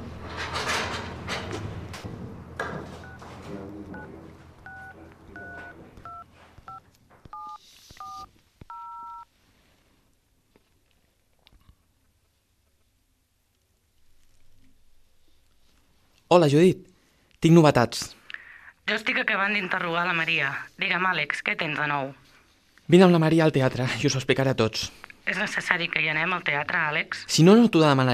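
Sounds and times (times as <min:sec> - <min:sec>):
touch-tone telephone number being dialled: 0:03.9 - 0:09.3
speech: 0:16.3 - 0:18.2, 0:18.9 - 0:22.3, 0:22.9 - 0:28.1.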